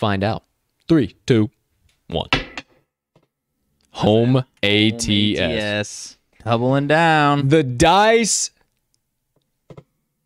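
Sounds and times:
speech: 0.0 - 2.4, 4.0 - 8.6
person exclaiming: 4.0 - 5.8.

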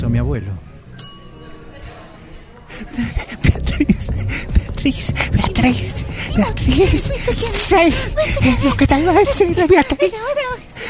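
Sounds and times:
low murmuring background: 0.0 - 10.8
speech: 0.1 - 0.8, 2.8 - 10.8
bright bell ding: 1.0 - 2.5
laughter: 2.6 - 10.8.

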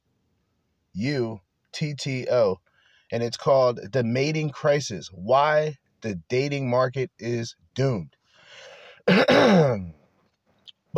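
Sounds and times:
speech: 1.0 - 8.2, 9.1 - 10.0
throat clearing: 9.1 - 10.0.

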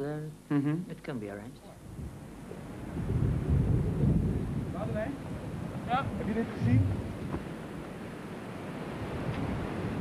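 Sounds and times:
speech: 0.0 - 2.2, 4.8 - 7.5
gusting wind rumbling across the microphone: 1.8 - 9.9
rough sea surf churning: 2.6 - 9.9.

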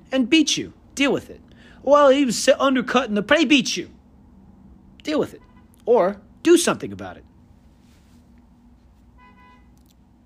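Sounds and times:
car traffic rumbling outside a hotel: 0.0 - 10.2
speech: 0.1 - 4.0, 5.0 - 7.3
harmonic car horn toot: 5.4 - 5.8, 9.2 - 9.8.

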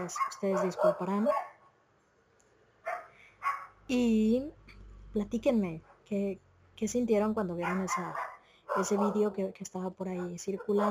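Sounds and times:
speech: 0.0 - 1.4, 3.9 - 4.6, 5.2 - 10.8
dogs barking at people: 0.0 - 1.6, 2.8 - 3.8, 7.6 - 9.4.

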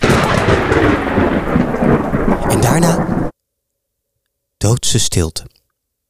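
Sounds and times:
loud thunderclap crashing and rumbling: 0.0 - 3.3
rain hissing: 0.0 - 3.3
speech: 4.7 - 5.6.

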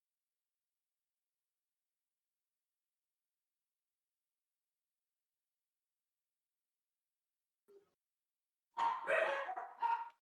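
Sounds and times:
dog barking: 8.8 - 10.2.

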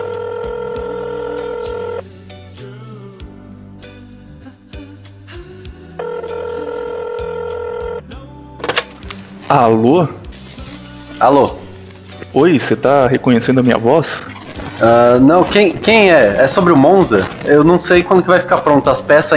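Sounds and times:
phone ringing tones: 0.0 - 2.0, 6.0 - 8.1
low continuous music: 0.0 - 19.3
speech: 9.5 - 10.2, 11.2 - 11.6, 12.4 - 19.3.

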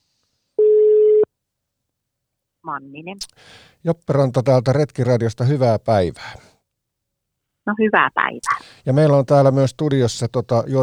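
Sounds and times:
electronic telephone ringback tone on an outgoing call: 0.6 - 1.3
speech: 2.7 - 6.5, 7.7 - 10.8.

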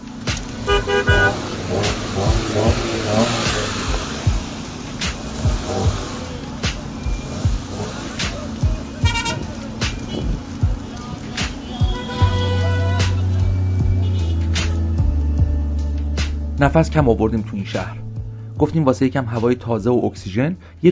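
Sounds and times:
car horns honking: 0.0 - 14.6
busy city traffic rumbling on the way to Karaj Iran: 0.0 - 20.9
speech: 16.6 - 18.0, 18.6 - 20.9.

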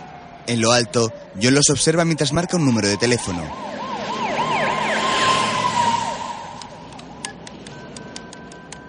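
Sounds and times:
police car sirens wailing as several cars cross a street in front of a church: 0.0 - 8.8
speech: 0.5 - 4.2.

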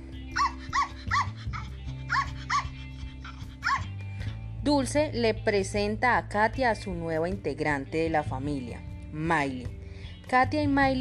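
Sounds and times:
small female dog yapping at a cat: 0.4 - 2.8, 3.6 - 3.9
speech: 4.7 - 10.9.

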